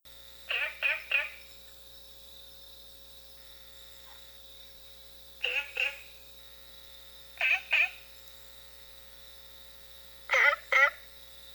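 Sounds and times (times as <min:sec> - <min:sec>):
Rana adenopleura frog calling: 0:00.5 - 0:01.6, 0:05.4 - 0:06.1, 0:07.4 - 0:08.0, 0:10.3 - 0:11.1.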